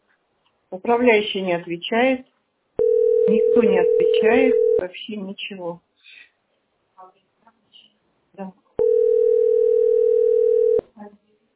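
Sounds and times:
speech: 0.7 - 5.9, 8.4 - 8.6
telephone dial tone while calling an accounting office: 2.8 - 4.8, 8.8 - 10.8.

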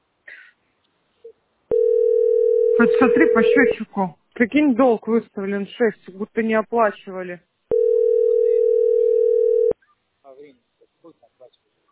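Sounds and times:
telephone dial tone while placing a call: 1.7 - 3.6, 7.7 - 9.8
speech: 2.8 - 7.5.

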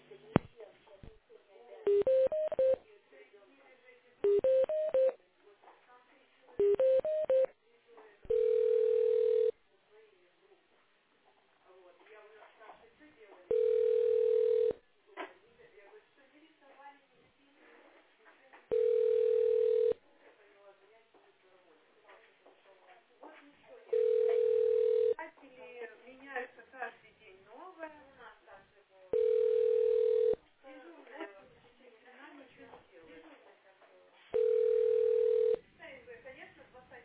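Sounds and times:
steady telephone ringing tones during a call transfer on hold: 1.9 - 2.8, 4.2 - 5.2, 6.6 - 7.6, 8.3 - 9.6, 13.5 - 14.8, 18.7 - 20.0, 23.9 - 25.2, 29.1 - 30.4, 34.4 - 35.6.

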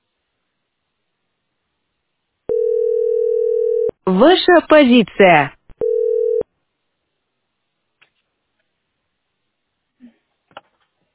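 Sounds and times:
telephone line tone beeping as a call to a heating utility drops: 2.5 - 3.9, 5.8 - 6.4
speech: 4.1 - 5.6.

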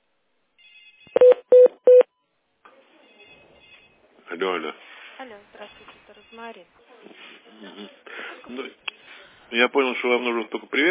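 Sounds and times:
telephone beeps as a call is transferred: 0.8 - 2.1
speech: 4.3 - 8.9, 9.5 - 10.8.

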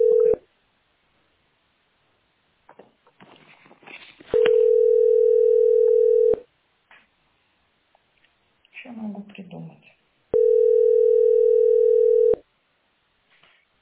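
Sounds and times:
telephone dial tone during a call: 0.0 - 0.4, 4.3 - 6.4, 10.4 - 12.4.

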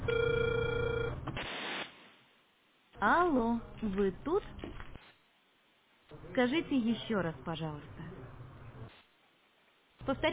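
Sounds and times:
telephone ringing tone while dialing: 0.0 - 1.2
brief rush of hiss: 1.4 - 2.2
speech: 3.0 - 4.6, 6.4 - 8.0, 10.1 - 10.3.

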